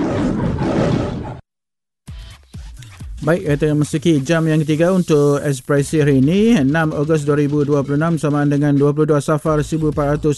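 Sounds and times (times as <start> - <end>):
lion roaring: 0.0 - 1.4
speech: 3.2 - 10.3.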